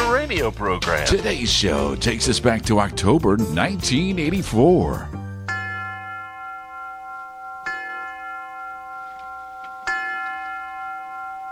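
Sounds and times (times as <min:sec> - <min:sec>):
speech: 0:00.3 - 0:05.2
university tower chimes ringing: 0:05.4 - 0:11.5.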